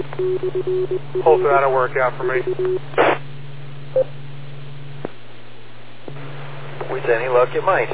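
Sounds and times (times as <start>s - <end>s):
low steady radio repeater hum: 0.0s - 7.9s
speech: 0.2s - 3.2s, 7.1s - 7.9s
burst of radio repeater static: 3.0s - 3.2s.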